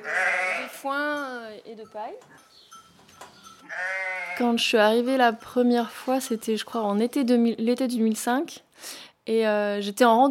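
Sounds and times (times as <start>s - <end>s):
milked ewes bleating inside a sheepfold on the Larzac: 0.0s - 0.9s, 3.6s - 4.6s
speech: 1.7s - 2.7s, 3.7s - 10.2s.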